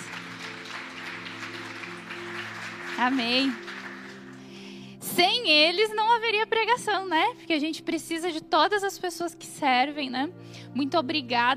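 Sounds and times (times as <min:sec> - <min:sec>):
audience clapping for volunteers: 0:00.0 - 0:04.8
speech: 0:03.0 - 0:03.6, 0:05.2 - 0:11.5.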